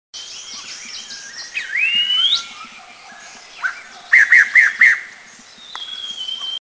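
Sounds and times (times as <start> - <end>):
Striated laughingthrush calling in Eaglenest India: 0.2 - 6.6.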